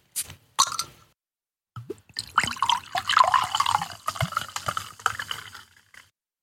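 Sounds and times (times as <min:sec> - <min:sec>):
liquid pouring into glasses: 0:01.9 - 0:06.1.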